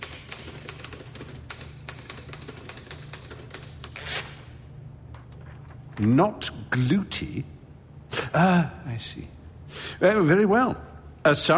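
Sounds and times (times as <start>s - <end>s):
typing on a QWERTY keyboard: 0.0s - 4.0s
speech: 6.0s - 7.6s, 8.4s - 11.5s.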